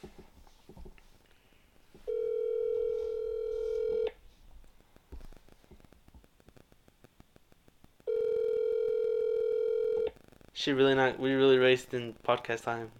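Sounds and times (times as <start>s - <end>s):
faint crackly noise: 0.0s - 12.9s
phone ringback tones through a speakerphone: 2.1s - 4.2s, 8.1s - 10.1s
speech: 10.6s - 12.9s.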